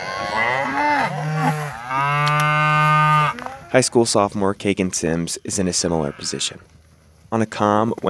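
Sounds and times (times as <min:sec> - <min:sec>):
pregnant cows mooing during calving season: 0:00.0 - 0:04.2, 0:05.3 - 0:06.6
speech: 0:03.7 - 0:08.0.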